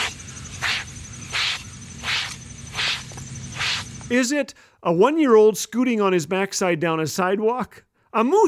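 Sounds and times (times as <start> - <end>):
hairbrush rubbed over a bald head: 0.0 - 4.0
speech: 4.1 - 8.4.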